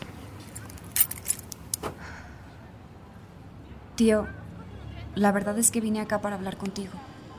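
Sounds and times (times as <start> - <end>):
keys jangling in a trembling hand: 0.4 - 1.8
speech: 4.0 - 4.4, 5.2 - 7.1.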